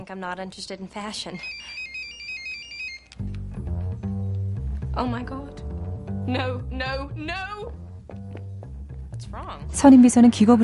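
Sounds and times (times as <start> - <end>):
speech: 0.0 - 1.9, 5.0 - 5.6, 6.3 - 7.8, 9.2 - 10.6
telephone ringing: 1.3 - 3.2.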